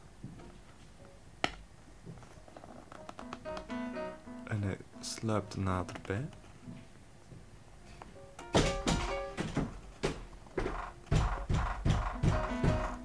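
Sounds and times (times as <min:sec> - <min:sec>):
speech: 0:05.0 - 0:06.4
heavy thuds banging against a door: 0:08.5 - 0:13.0.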